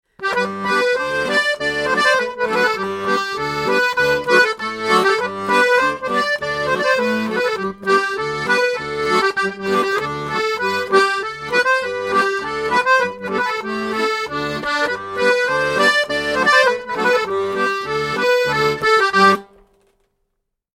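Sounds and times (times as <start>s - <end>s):
accordion: 0.2s - 19.6s.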